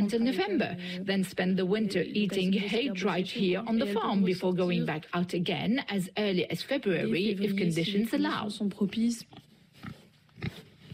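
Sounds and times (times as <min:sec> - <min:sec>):
speech: 0:00.0 - 0:10.6
outdoor-reared farm pigs grunting: 0:09.8 - 0:10.9.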